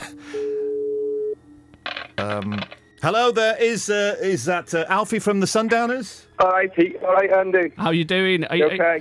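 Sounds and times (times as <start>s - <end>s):
international telephone line tone: 0.4s - 2.4s
speech: 2.2s - 8.9s.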